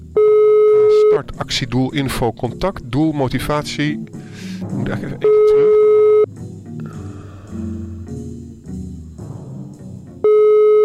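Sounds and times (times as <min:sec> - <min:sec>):
loud steady beep: 0:00.2 - 0:01.2, 0:05.2 - 0:06.3, 0:10.2 - 0:10.8
telephone call ringing out unanswered: 0:00.2 - 0:01.2, 0:05.2 - 0:06.3, 0:10.3 - 0:10.8
speech: 0:01.4 - 0:05.9.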